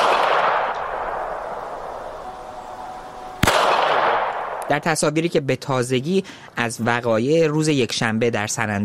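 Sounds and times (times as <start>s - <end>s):
gunshot fired at protesters: 0.0s - 1.4s, 3.4s - 4.7s
outdoor noise: 0.0s - 8.8s
speech: 4.7s - 8.8s.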